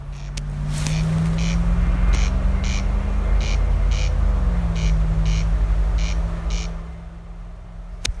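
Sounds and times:
corncrake rasping double call: 0.0s - 6.8s
continuous vehicle engine rumble: 0.0s - 8.1s.

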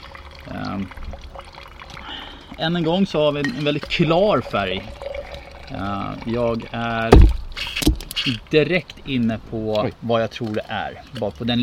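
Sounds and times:
wine poured into a glass at a wine tasting: 0.0s - 8.4s
speech: 0.4s - 1.6s, 2.6s - 5.0s, 5.7s - 7.4s, 8.2s - 11.6s.

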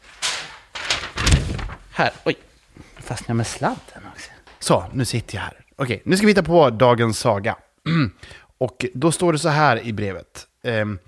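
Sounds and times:
rustling of dropped paper: 0.0s - 2.4s
objects accidentally dropped on the floor thudding: 0.2s - 1.9s
speech: 2.0s - 2.5s, 3.1s - 11.0s.

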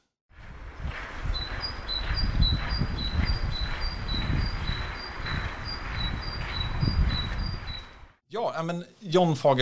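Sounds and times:
great tit singing in Christmas lights outside a newspaper office in Norrtälje Sweden: 1.3s - 8.0s
speech: 8.4s - 9.6s.

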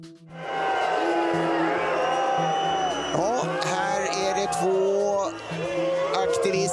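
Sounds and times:
large stadium crowd booing activists on running track: 0.4s - 6.7s
stadium crowd whistles: 1.8s - 3.5s.

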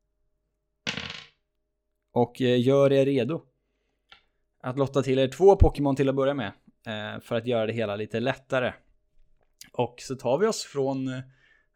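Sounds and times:
dice rolling on a hard table: 0.8s - 1.4s
speech: 2.2s - 3.5s, 4.6s - 8.8s, 9.7s - 11.4s.

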